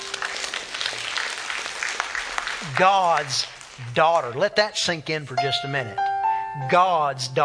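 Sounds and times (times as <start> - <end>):
crowd clapping: 0.0 - 4.4
speech: 2.6 - 7.4.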